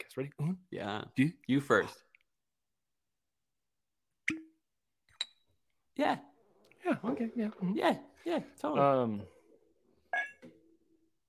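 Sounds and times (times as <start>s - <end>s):
speech: 0.0s - 2.1s, 6.0s - 9.4s
wine cork popping out of a bottle: 4.2s - 5.4s.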